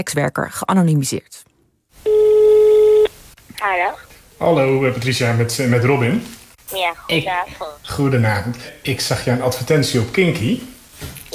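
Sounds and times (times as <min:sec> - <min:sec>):
speech: 0:00.0 - 0:01.5, 0:03.6 - 0:11.3
telephone ringback tone as a call is placed: 0:02.1 - 0:03.1.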